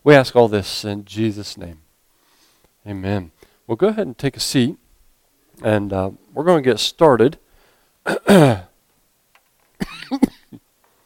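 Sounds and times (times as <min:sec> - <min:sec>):
speech: 0:00.0 - 0:01.8, 0:02.8 - 0:04.8, 0:05.6 - 0:07.4, 0:08.0 - 0:08.7, 0:10.1 - 0:10.3
loud throat clearing: 0:08.0 - 0:08.7
rough coughs: 0:08.0 - 0:08.7, 0:09.8 - 0:10.6.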